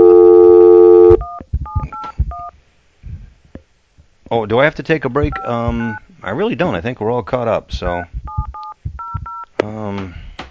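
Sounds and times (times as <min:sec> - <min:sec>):
telephone dial tone: 0:00.0 - 0:02.5
touch-tone beeps as a phone number is dialed: 0:00.0 - 0:02.5, 0:08.3 - 0:09.5
speech: 0:04.3 - 0:08.3.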